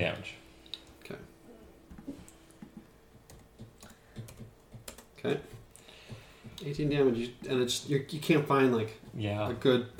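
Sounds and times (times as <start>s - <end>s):
speech: 0.0s - 0.4s, 1.1s - 1.3s, 5.2s - 5.5s, 6.6s - 9.9s
typing on a computer keyboard: 3.2s - 6.2s.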